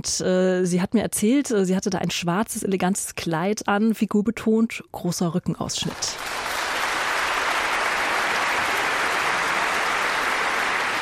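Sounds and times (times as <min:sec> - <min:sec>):
speech: 0:00.0 - 0:06.4
large concert audience applauding: 0:06.0 - 0:11.0.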